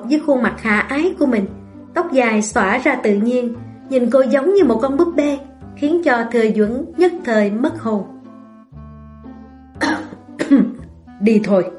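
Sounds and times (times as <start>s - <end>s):
speech: 0.1s - 8.1s, 11.2s - 11.7s
man's feigned dry cough: 9.8s - 10.7s.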